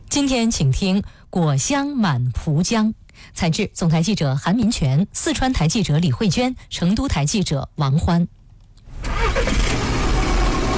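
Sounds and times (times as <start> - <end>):
speech: 0.2 - 8.4
car engine starting and running: 8.9 - 10.7.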